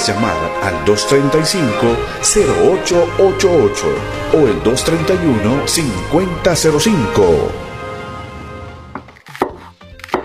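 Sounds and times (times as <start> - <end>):
speech: 0.0 - 7.7
knife chopping chili and bell peppers on a cutting board for a stew: 9.4 - 10.2.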